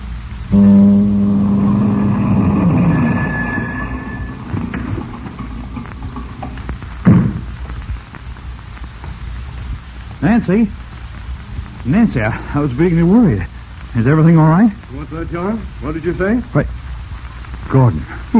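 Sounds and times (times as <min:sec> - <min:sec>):
approaching car engine humming: 0:00.0 - 0:08.2
dull thump: 0:04.6 - 0:07.5
speech: 0:10.3 - 0:10.8, 0:11.9 - 0:16.8, 0:17.7 - 0:18.3.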